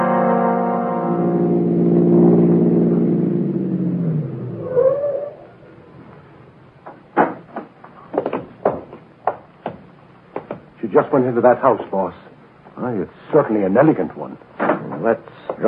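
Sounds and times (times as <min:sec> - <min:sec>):
car engine humming as the vehicle pulls away: 0:00.2 - 0:05.7
sharp clicks and knocks: 0:06.9 - 0:10.7
speech: 0:11.2 - 0:15.6.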